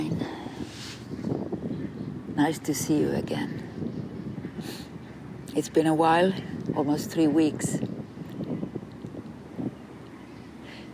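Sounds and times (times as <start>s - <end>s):
outdoor wind in a park blustering across a microphone: 0.0s - 10.9s
speech: 2.4s - 3.6s, 5.6s - 7.9s.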